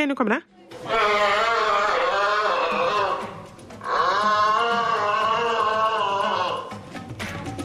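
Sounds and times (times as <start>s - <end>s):
speech: 0.0s - 1.4s
giraffe bellowing: 0.8s - 6.9s.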